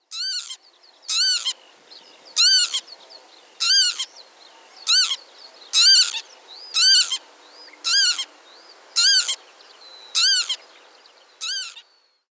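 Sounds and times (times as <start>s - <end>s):
northern lapwing flight calls: 0.1s - 1.6s, 2.4s - 2.9s, 3.6s - 4.1s, 4.9s - 6.2s, 6.8s - 7.2s, 7.8s - 8.3s, 9.0s - 9.4s, 10.2s - 10.6s, 11.4s - 11.9s.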